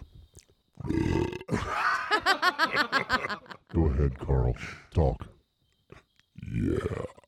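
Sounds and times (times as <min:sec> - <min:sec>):
loud deep burp into microphone: 0:00.8 - 0:01.8, 0:06.4 - 0:07.2
laughter: 0:01.7 - 0:03.7
speech: 0:02.3 - 0:05.3, 0:06.5 - 0:07.2.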